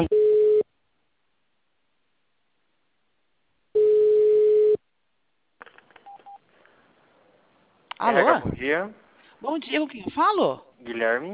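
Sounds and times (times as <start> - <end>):
telephone tone during call transfer: 0.0 - 0.6, 3.8 - 4.8
speech: 8.0 - 11.3.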